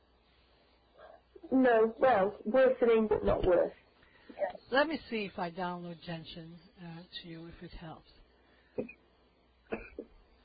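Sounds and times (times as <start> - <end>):
speech: 1.4 - 3.8, 4.4 - 8.2, 8.8 - 9.0
person coughing: 9.7 - 10.1.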